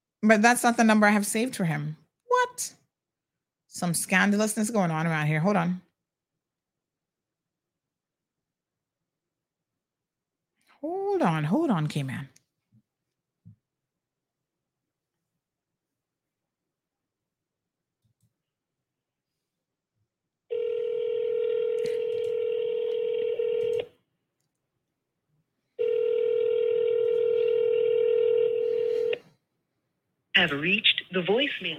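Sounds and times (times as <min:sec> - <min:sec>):
speech: 0:00.2 - 0:02.8, 0:03.8 - 0:05.9, 0:10.8 - 0:12.3, 0:30.4 - 0:31.7
telephone call ringing tone: 0:20.5 - 0:23.9, 0:25.8 - 0:29.2.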